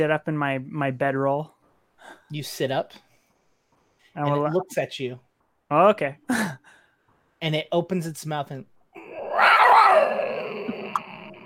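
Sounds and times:
speech: 0:00.0 - 0:03.0, 0:04.2 - 0:06.8, 0:07.4 - 0:08.7
person imitating a creature's small raspy growl: 0:09.0 - 0:11.4.

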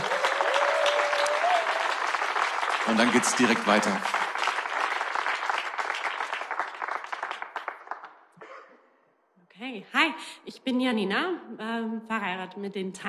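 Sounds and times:
crowd applauding: 0:00.0 - 0:08.2
speech: 0:02.9 - 0:04.2, 0:10.7 - 0:13.0.

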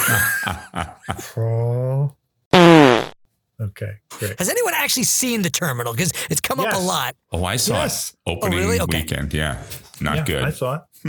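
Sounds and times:
laughter: 0:00.0 - 0:01.6
speech: 0:00.1 - 0:02.2, 0:03.6 - 0:11.0
cartoonish fart sound effect: 0:02.5 - 0:03.2.

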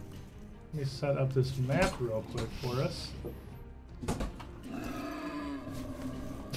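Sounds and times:
speech: 0:00.7 - 0:04.2
angry pig squealing and grunting: 0:04.6 - 0:06.5.

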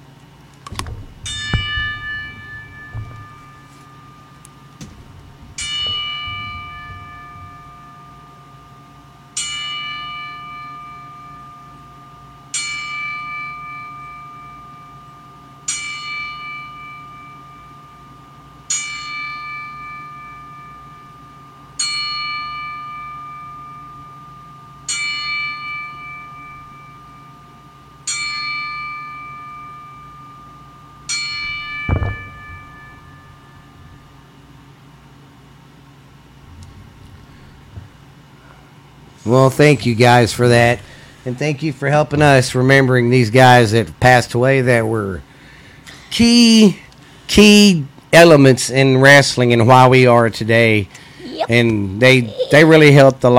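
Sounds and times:
single bell tolling as a ten-bell salute for deceased wrestlers: 0:00.7 - 0:43.1
speech: 0:39.3 - 0:45.3, 0:46.1 - 0:53.3.

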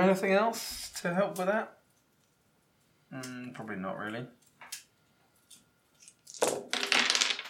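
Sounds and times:
speech: 0:00.0 - 0:01.8, 0:03.1 - 0:04.4
dice clattering across a hard table: 0:06.0 - 0:07.4.

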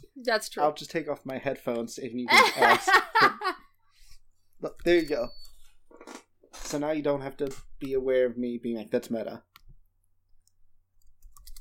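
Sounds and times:
speech: 0:00.2 - 0:03.6, 0:04.6 - 0:05.4, 0:06.1 - 0:09.5
laughter: 0:02.3 - 0:03.6
keyboard typing: 0:10.3 - 0:11.6.

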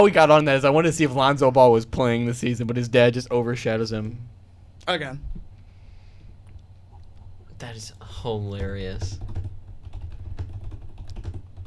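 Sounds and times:
speech: 0:00.0 - 0:05.4, 0:07.6 - 0:09.4
low hum: 0:00.0 - 0:11.6
rapid computer keyboard typing with light plastic clicks: 0:08.5 - 0:11.6.

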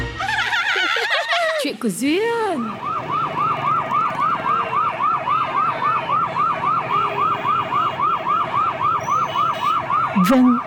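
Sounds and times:
laughter: 0:00.2 - 0:01.8
faint street traffic rumbling: 0:01.6 - 0:10.6
speech: 0:01.8 - 0:03.2, 0:10.3 - 0:10.6
ambulance siren wailing in a fast yelp: 0:02.6 - 0:10.6.

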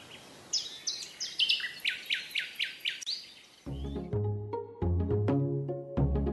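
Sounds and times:
bird singing bright repeated chirps: 0:00.0 - 0:04.1
music with sustained tones: 0:03.7 - 0:06.3.

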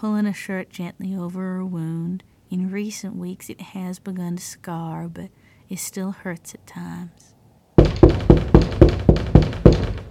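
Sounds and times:
speech: 0:00.0 - 0:07.3
heavy banging knocks on a front door: 0:07.8 - 0:10.0.

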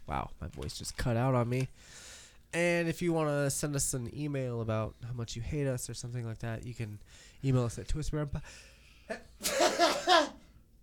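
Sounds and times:
speech: 0:00.1 - 0:10.3
sharp intake of breath: 0:01.8 - 0:02.4.

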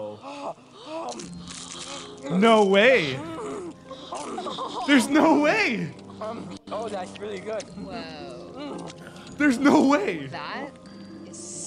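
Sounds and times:
voiced murmuring sounds: 0:00.0 - 0:10.8
crunchy snack being bitten and chewed: 0:01.0 - 0:02.3
speech: 0:02.2 - 0:03.3, 0:04.9 - 0:10.8
laughter: 0:03.0 - 0:06.4.

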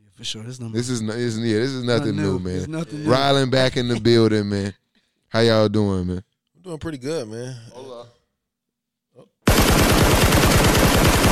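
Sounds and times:
speech: 0:00.2 - 0:08.2
burst of rapid-fire gunshots: 0:09.5 - 0:11.3.

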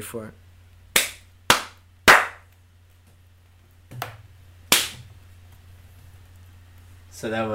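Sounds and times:
hand slaps: 0:01.0 - 0:02.5, 0:03.9 - 0:05.1.

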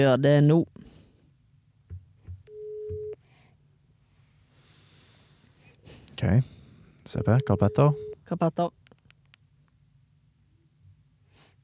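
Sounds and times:
speech: 0:00.0 - 0:00.8, 0:06.2 - 0:06.5, 0:07.1 - 0:08.8
soft low thumps: 0:01.8 - 0:03.1
electronic phone ringback tone: 0:02.5 - 0:03.2, 0:07.2 - 0:08.2.

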